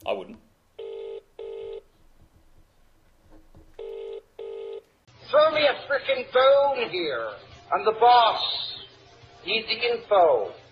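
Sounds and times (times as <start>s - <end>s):
phone ringback tone through earpiece on outgoing call: 0.8s - 1.9s, 3.8s - 4.8s
speech: 5.7s - 8.7s, 9.4s - 10.6s.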